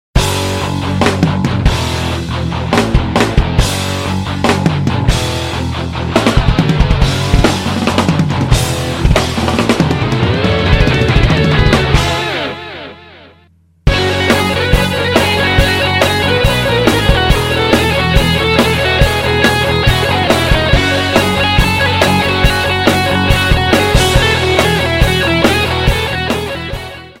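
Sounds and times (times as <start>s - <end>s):
heavy guitar: 0.2s - 27.1s.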